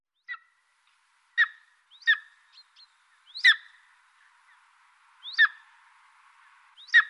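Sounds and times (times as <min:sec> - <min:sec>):
eagle giving sharp high-pitched calls: 0:01.4 - 0:04.6, 0:05.2 - 0:05.7, 0:06.8 - 0:07.0.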